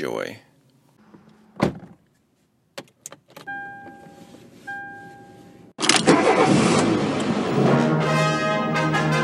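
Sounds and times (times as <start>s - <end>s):
speech: 0.0s - 0.5s
car door thudding shut: 1.6s - 2.0s
car engine cranking, starting and idling: 5.6s - 9.1s.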